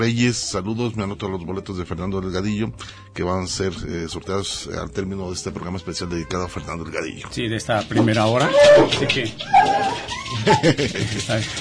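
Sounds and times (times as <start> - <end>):
speech: 0.0 - 11.5
dog whimpering and whining: 8.0 - 10.8
laughter: 10.0 - 11.5.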